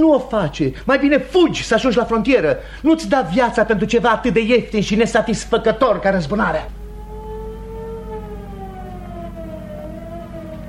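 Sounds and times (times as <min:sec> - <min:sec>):
speech: 0:00.0 - 0:06.8
police car sirens wailing: 0:06.8 - 0:10.6.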